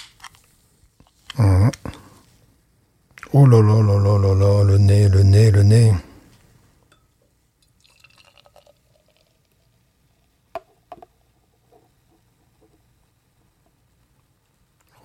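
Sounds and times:
speech: 0:01.4 - 0:01.8, 0:03.4 - 0:05.8
beer trickling from a can into a glass: 0:07.6 - 0:10.8.

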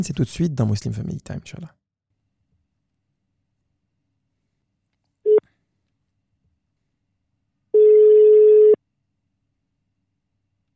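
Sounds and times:
speech: 0:00.0 - 0:01.8
long steady telephone ringing tone: 0:07.8 - 0:08.8
phone line beep as a telephone call is placed: 0:07.8 - 0:08.8.

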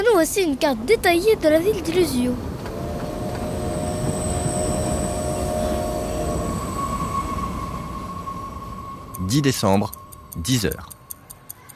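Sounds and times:
speech: 0:00.0 - 0:02.5, 0:09.3 - 0:10.9
express train rumbling as it slows to a stop at a station: 0:00.0 - 0:11.7
express train wheels and brakes squealing: 0:02.6 - 0:11.7.

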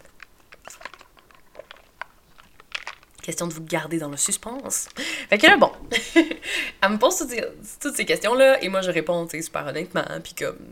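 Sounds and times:
person sipping iced coffee: 0:00.0 - 0:05.2
ice clicking and rattling in an iced coffee cup: 0:00.0 - 0:05.6
speech: 0:03.3 - 0:10.7
laughter: 0:05.9 - 0:06.7.

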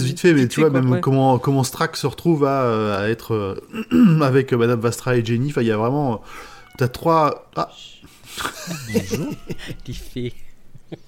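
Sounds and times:
speech: 0:00.1 - 0:11.0
cat meowing: 0:06.3 - 0:07.1
laughter: 0:08.3 - 0:11.0.

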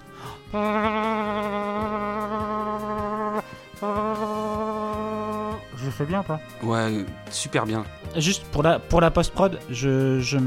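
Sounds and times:
breath: 0:00.0 - 0:00.5
speech: 0:00.5 - 0:01.5, 0:06.0 - 0:10.4
voice imitating a vuvuzela with a buzzy drone: 0:00.5 - 0:05.9.

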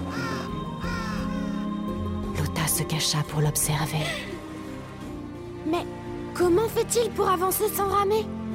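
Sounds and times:
crows cawing: 0:00.1 - 0:01.7
speech: 0:02.8 - 0:04.3, 0:05.7 - 0:08.4.

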